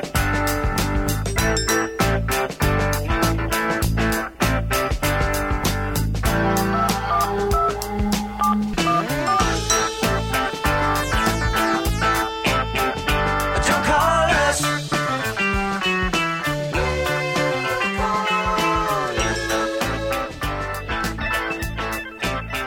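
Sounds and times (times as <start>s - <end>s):
1970s pop rock song played by a full band: 0.0s - 22.6s
bright touch-tone-like beeps: 1.3s - 2.4s, 6.6s - 11.8s.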